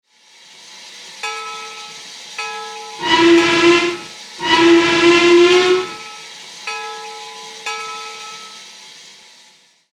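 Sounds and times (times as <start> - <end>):
hooter sounding: 3.0 - 6.0.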